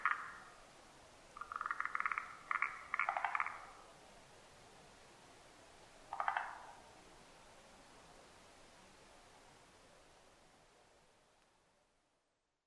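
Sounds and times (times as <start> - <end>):
forest green tree frog giving stuttering pulsed chuckles: 1.4 - 3.7.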